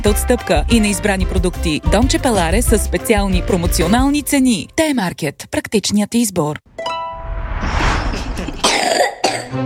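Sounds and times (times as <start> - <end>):
speech: 0.0 - 6.9
person coughing with chesty and throaty hacks: 8.2 - 9.5.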